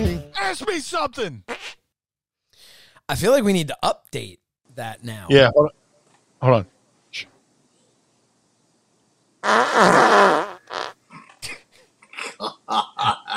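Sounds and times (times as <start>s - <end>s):
speech: 0.5s - 1.6s, 3.1s - 5.8s, 6.4s - 7.3s, 9.4s - 10.5s
fart-like blast blown through a cardboard candy box: 9.4s - 11.0s.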